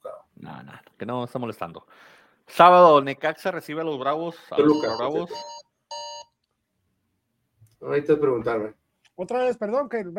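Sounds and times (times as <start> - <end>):
speech: 0.6 - 5.6, 7.8 - 10.1
short electronic alarm tones from a phone: 4.6 - 6.4.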